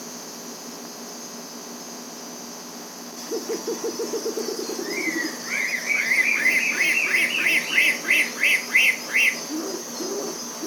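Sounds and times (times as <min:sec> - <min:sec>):
insect hum: 0:00.0 - 0:10.6
bare-legged owl hooting: 0:03.3 - 0:10.6
slurred whistles: 0:05.8 - 0:09.4.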